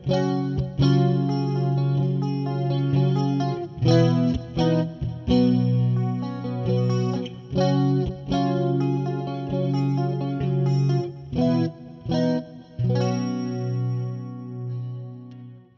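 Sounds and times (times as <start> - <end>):
vintage electric guitar on neck and middle pickups, clean tone: 0.0 - 15.7.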